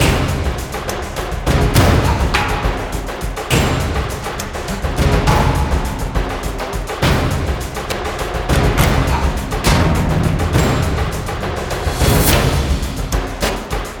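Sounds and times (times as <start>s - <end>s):
combat loop: 0.0s - 13.9s.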